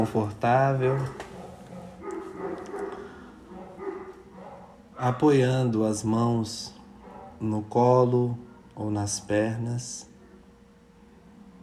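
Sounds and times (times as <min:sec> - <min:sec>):
speech: 0:00.0 - 0:01.3, 0:05.0 - 0:06.8, 0:07.4 - 0:10.1
steady low hum: 0:00.0 - 0:11.6
dog barking: 0:00.8 - 0:05.5, 0:07.0 - 0:07.5.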